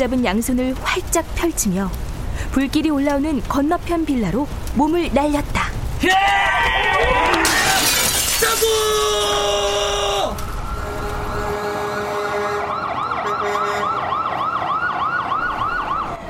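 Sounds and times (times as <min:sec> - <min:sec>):
speech: 0:00.0 - 0:07.6, 0:08.4 - 0:10.4
fire truck siren arriving at a fire: 0:09.8 - 0:16.2.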